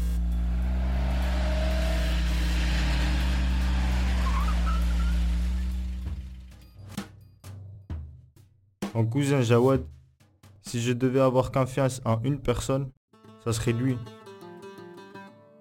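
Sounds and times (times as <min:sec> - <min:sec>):
car engine revving: 0:00.0 - 0:06.6
speech: 0:09.0 - 0:10.0, 0:10.6 - 0:14.2.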